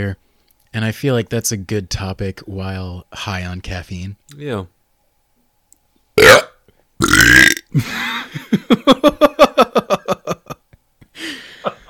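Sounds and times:
speech: 0:00.0 - 0:04.8, 0:07.2 - 0:09.2
person burping: 0:06.2 - 0:07.8.

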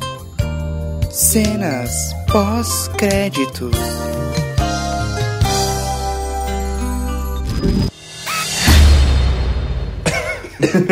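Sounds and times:
bright tinkling musical backing: 0:00.2 - 0:09.0
speech: 0:01.3 - 0:04.2, 0:10.6 - 0:10.8
person coughing: 0:10.0 - 0:10.8
laughter: 0:10.1 - 0:10.8.

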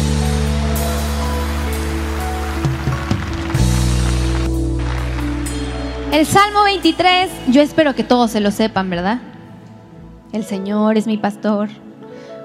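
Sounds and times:
large crowd applauding loudly: 0:00.0 - 0:07.6
sustained instrumental tones: 0:00.0 - 0:10.4
speech: 0:06.2 - 0:09.3, 0:10.3 - 0:11.8.

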